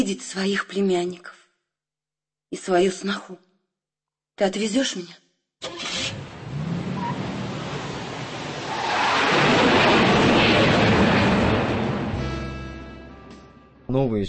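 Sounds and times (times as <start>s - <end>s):
speech: 0.0s - 1.4s, 2.5s - 3.5s, 4.4s - 5.9s, 13.9s - 14.2s
rushing airplane roar: 5.8s - 13.4s.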